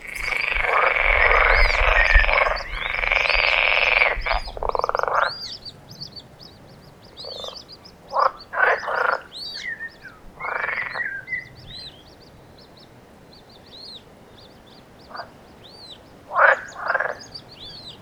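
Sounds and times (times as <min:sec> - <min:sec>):
high arched chirps from small callers: 0:00.0 - 0:03.6
frogs croaking in nature: 0:00.0 - 0:18.0.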